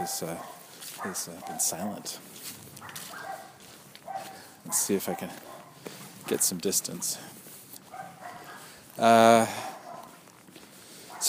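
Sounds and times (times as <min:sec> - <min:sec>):
dog barking: 0:00.0 - 0:02.2, 0:02.8 - 0:06.5, 0:07.8 - 0:08.8, 0:09.4 - 0:10.2, 0:11.1 - 0:11.2
speech: 0:00.0 - 0:02.6, 0:04.7 - 0:05.5, 0:06.3 - 0:07.4, 0:09.0 - 0:09.7
footsteps: 0:00.0 - 0:11.2
outdoor rustling: 0:00.0 - 0:11.2.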